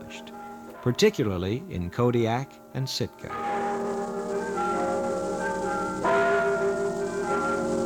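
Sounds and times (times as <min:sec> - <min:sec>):
Russian Orthodox church bells ringing in a sustained peal: 0:00.0 - 0:07.8
speech: 0:00.1 - 0:03.5.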